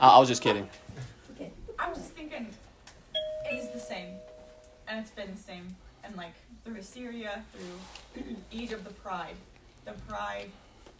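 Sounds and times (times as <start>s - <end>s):
speech: 0.0s - 1.1s, 4.9s - 10.6s
doorbell chiming two clear ringing tones: 3.2s - 4.9s.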